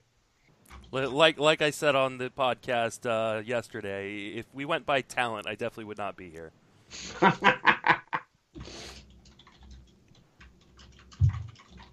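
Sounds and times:
speech: 0:00.9 - 0:07.8
laughter: 0:07.0 - 0:08.2
typing on a computer keyboard: 0:08.9 - 0:11.9.

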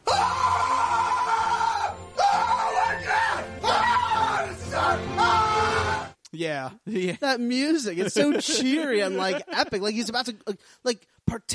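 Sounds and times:
man in extreme pain screaming with guttural rage-type screams: 0:00.0 - 0:06.2
speech: 0:06.4 - 0:11.5
laughter: 0:06.8 - 0:10.4.

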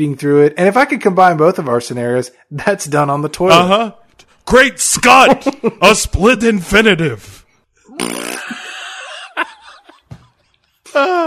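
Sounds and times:
speech: 0:00.0 - 0:07.4, 0:08.0 - 0:08.5, 0:10.9 - 0:11.2
laughter: 0:05.1 - 0:06.0, 0:08.3 - 0:11.2
fart sound effect: 0:07.9 - 0:08.6.

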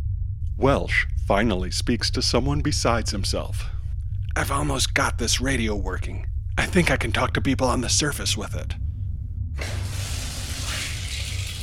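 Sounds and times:
deep rumbling low end: 0:00.0 - 0:11.6
speech: 0:00.6 - 0:03.8, 0:04.4 - 0:08.8
water spraying in through cracked submarine wall: 0:09.6 - 0:11.6.

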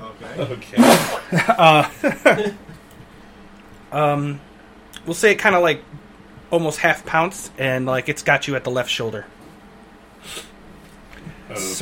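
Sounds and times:
speech: 0:00.3 - 0:02.7, 0:03.9 - 0:09.4, 0:11.5 - 0:11.7
laughter: 0:00.3 - 0:02.8
sneeze: 0:00.8 - 0:01.3.

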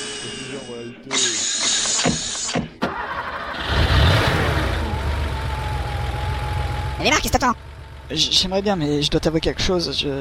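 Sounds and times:
speech: 0:00.7 - 0:01.5, 0:07.1 - 0:10.1
car starter motor whirring: 0:02.8 - 0:08.1
car engine revving: 0:02.9 - 0:10.1.

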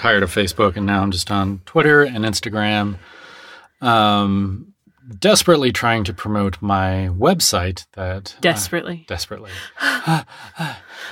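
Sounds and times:
speech: 0:00.0 - 0:03.2, 0:03.8 - 0:11.1
desperate dramatic heavy breathing gasps: 0:03.0 - 0:03.8, 0:09.5 - 0:11.1.

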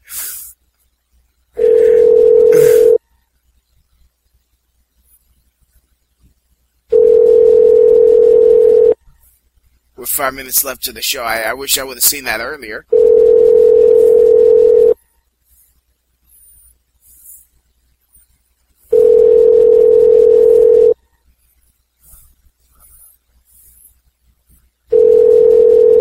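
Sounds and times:
electronic ringback tone of an outgoing phone call: 0:01.6 - 0:03.0, 0:06.9 - 0:09.0, 0:12.9 - 0:15.0, 0:18.9 - 0:21.0, 0:24.9 - 0:25.9
speech: 0:10.2 - 0:13.1.

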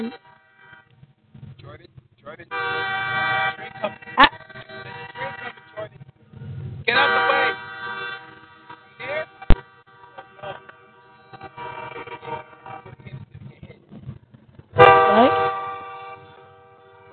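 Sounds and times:
speech: 0:00.0 - 0:00.3, 0:02.3 - 0:04.3
train horn blaring: 0:02.5 - 0:05.8, 0:06.9 - 0:13.0, 0:14.8 - 0:17.1
voices: 0:03.6 - 0:04.4, 0:05.0 - 0:15.4.

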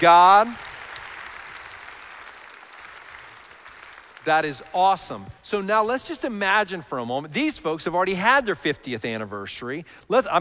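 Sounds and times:
speech: 0:00.0 - 0:00.8, 0:04.2 - 0:10.3
crowd applauding: 0:00.0 - 0:05.0.

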